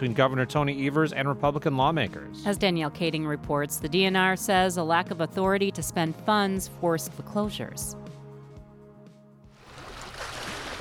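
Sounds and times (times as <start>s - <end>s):
speech: 0.0s - 8.1s
water lapping along the shore of a Lake Superior bay: 9.6s - 10.8s.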